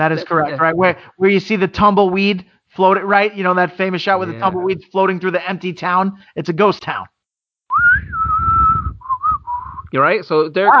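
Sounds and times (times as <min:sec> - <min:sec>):
speech: 0:00.0 - 0:07.1, 0:09.9 - 0:10.7
person whistling a lonesome western-style melody: 0:07.7 - 0:09.9.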